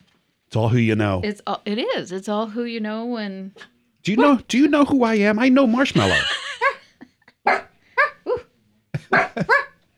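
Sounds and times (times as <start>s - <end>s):
speech: 0.5s - 6.4s
laughter: 5.8s - 7.4s, 9.0s - 9.7s
female dog barking at someone outside: 7.5s - 8.5s, 9.1s - 9.8s.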